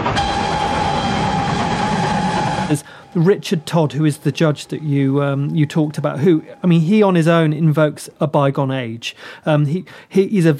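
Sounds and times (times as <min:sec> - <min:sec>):
steam train running on rails: 0:00.0 - 0:07.5
speech: 0:02.7 - 0:10.5.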